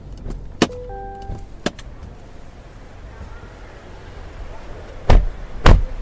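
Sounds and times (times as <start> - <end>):
car door clunks: 0.2 - 1.8, 5.1 - 5.9.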